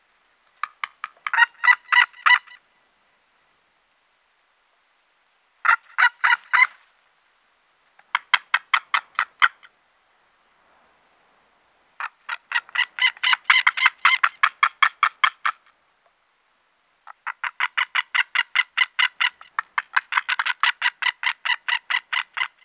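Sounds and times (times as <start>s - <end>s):
white-tailed eagle yelping calls: 0.6s - 2.6s, 5.6s - 6.8s, 12.0s - 15.7s, 17.1s - 22.6s.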